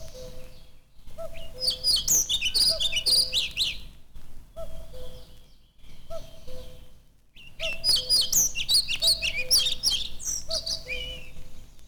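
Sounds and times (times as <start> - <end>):
redwing singing a rapid scratchy high twitter: 1.4 - 3.8, 7.6 - 11.3.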